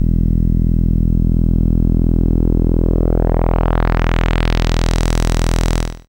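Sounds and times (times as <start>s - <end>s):
SID chip bass note E: 0.0s - 6.0s.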